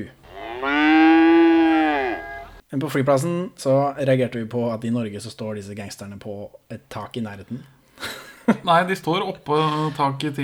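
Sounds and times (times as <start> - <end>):
speech: 0.0 - 0.2, 2.7 - 10.4
cow mooing: 0.2 - 2.6
laughter: 8.0 - 8.7.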